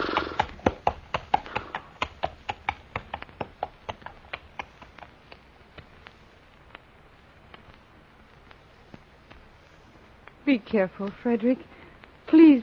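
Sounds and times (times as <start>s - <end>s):
horse hooves clip-clopping at a walking pace on a hard surface: 0.0s - 9.6s
speech: 10.5s - 12.6s.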